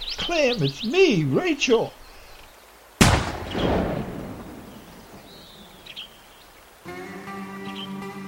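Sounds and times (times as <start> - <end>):
speech: 0.2 - 2.0
loud gunshot with rolling echo: 3.0 - 4.9.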